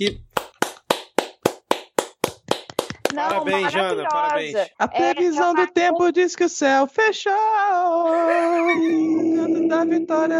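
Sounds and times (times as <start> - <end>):
speech: 0.0 - 0.3, 3.1 - 10.3
single pair of hands clapping: 0.1 - 4.5
laughter: 8.1 - 10.0.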